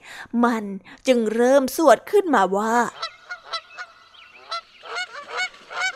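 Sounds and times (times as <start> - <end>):
speech: 0.2 - 3.0
geese honking: 2.9 - 5.9.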